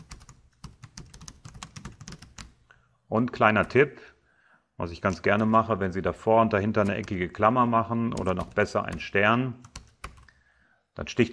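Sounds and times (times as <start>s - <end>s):
typing on a computer keyboard: 0.0s - 2.6s, 6.7s - 7.2s, 8.1s - 10.3s
speech: 3.1s - 4.2s, 4.8s - 9.7s, 11.0s - 11.3s.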